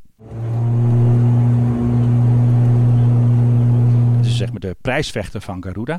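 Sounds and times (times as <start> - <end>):
ATR 72 turboprop airliner engine droning: 0.0 - 4.6
speech: 4.6 - 5.9.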